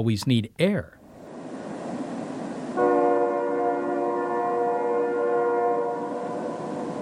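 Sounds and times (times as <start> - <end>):
speech: 0.0 - 1.0
distant train horn blast: 2.8 - 6.9.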